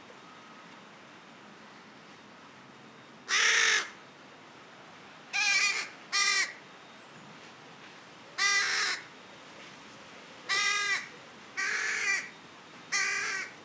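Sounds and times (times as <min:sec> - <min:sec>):
carrion crow Corvus corone harsh nasal caws: 0:03.3 - 0:04.0, 0:05.4 - 0:06.6, 0:08.4 - 0:09.1, 0:10.5 - 0:12.3, 0:12.9 - 0:13.6.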